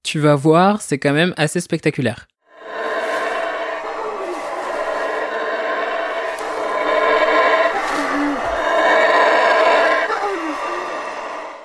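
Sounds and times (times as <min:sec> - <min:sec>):
speech: 0:00.1 - 0:02.8
chorus of howler monkeys roaring: 0:02.6 - 0:11.6.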